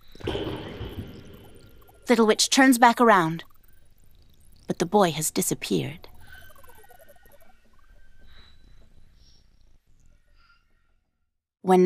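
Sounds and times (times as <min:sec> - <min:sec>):
object dropping into water: 0:00.2 - 0:02.1
speech: 0:02.1 - 0:03.5, 0:04.7 - 0:06.1, 0:11.6 - 0:11.8.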